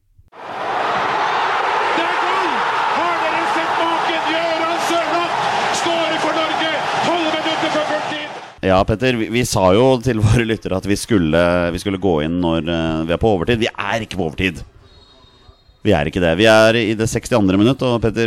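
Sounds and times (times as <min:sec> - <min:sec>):
stadium crowd noise in a produced jingle: 0:00.4 - 0:08.6
speech: 0:08.6 - 0:14.7, 0:15.8 - 0:18.2.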